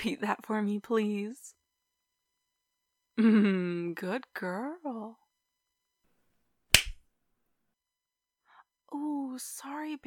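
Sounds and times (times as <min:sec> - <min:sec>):
speech: 0:00.0 - 0:01.6, 0:03.2 - 0:05.2, 0:08.9 - 0:10.0
hand slapping skin: 0:06.7 - 0:07.0.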